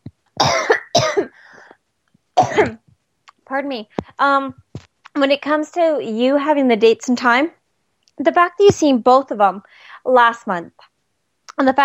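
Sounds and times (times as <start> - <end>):
harsh forceful coughs: 0.4 - 1.4, 2.4 - 2.8
brief raspy trailing breath: 1.3 - 1.8, 9.7 - 10.0
speech: 3.6 - 4.6, 5.2 - 7.6, 8.2 - 10.9, 11.6 - 11.8.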